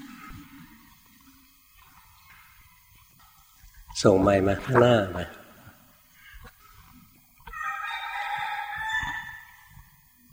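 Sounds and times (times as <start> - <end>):
speech: 4.0 - 5.4
rooster crowing loudly: 7.5 - 9.8.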